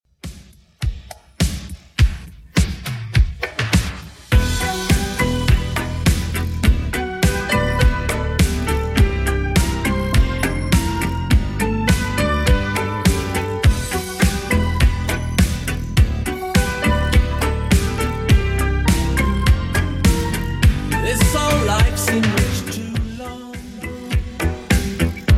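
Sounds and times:
80s drum machine beat at 103 bpm: 0:00.1 - 0:25.3.

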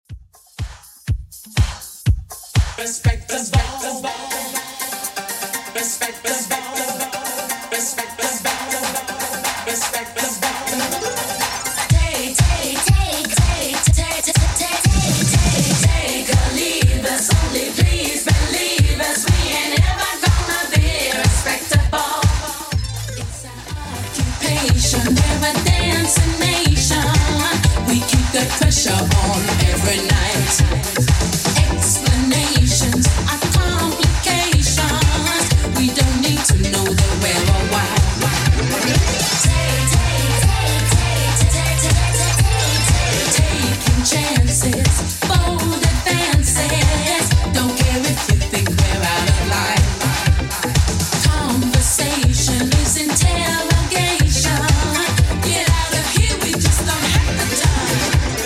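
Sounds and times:
80s style music at 122 bpm: 0:00.3 - 0:58.4.

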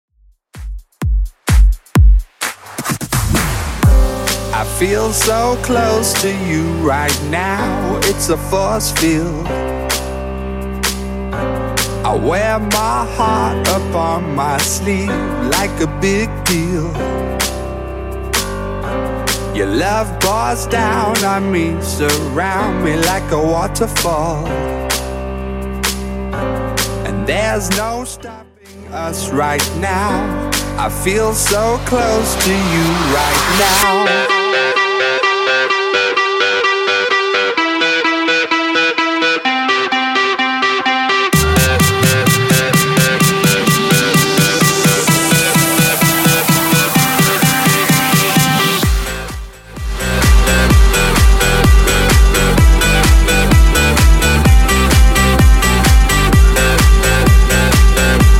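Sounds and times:
dance music at 128 bpm: 0:00.6 - 0:58.3.

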